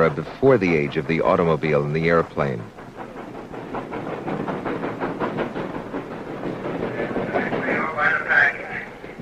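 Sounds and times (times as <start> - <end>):
speech: 0.0 - 2.8
steam locomotive running with rhythmic chuffing and rattling: 0.0 - 9.2.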